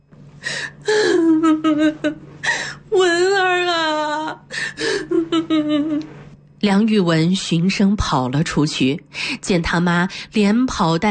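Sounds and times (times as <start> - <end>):
person sobbing and wailing, both grief-stricken and overjoyed: 0.6 - 6.0
speech: 6.6 - 11.0.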